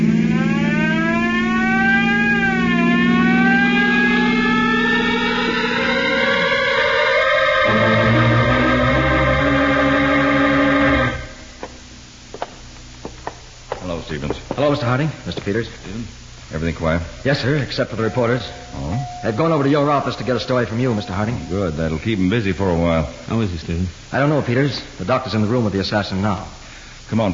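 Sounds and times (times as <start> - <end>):
police car siren wailing: 0.0 - 11.6, 17.2 - 22.9
speech: 15.0 - 15.8, 16.8 - 18.6, 19.2 - 27.3.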